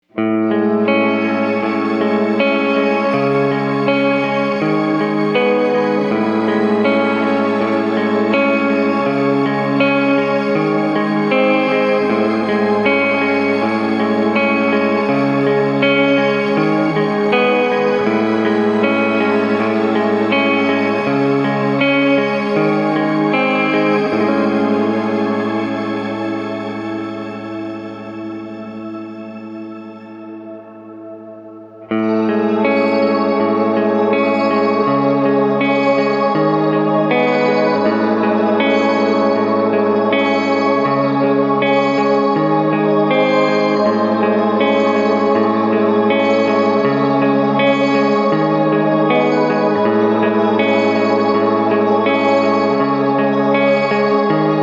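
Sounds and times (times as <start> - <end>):
shimmer reverb effect: 0.2 - 54.6.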